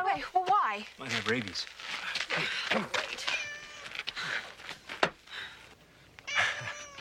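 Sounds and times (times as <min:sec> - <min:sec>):
speech: 0:00.2 - 0:03.4
cat meowing: 0:03.2 - 0:04.0, 0:06.2 - 0:07.0.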